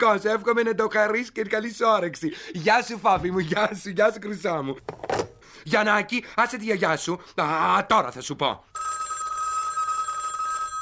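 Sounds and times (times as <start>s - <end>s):
speech: 0.0s - 9.0s
telephone bell ringing: 8.7s - 10.7s.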